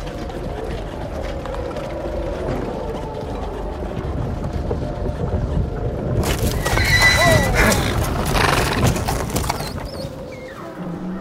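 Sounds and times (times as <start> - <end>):
steady windy noise: 0.0 - 10.9
horse-drawn stagecoach rumbling and clattering to a halt at a castle: 0.0 - 11.1
stagecoach hooves and wheels: 0.0 - 11.1
horse whinnying loudly: 6.2 - 10.5.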